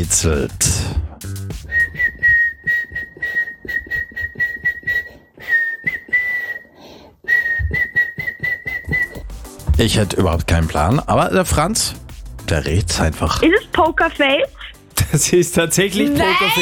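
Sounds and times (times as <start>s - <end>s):
speech: 0.0s - 1.4s, 9.8s - 16.6s
person whistling a pop tune: 1.6s - 9.4s.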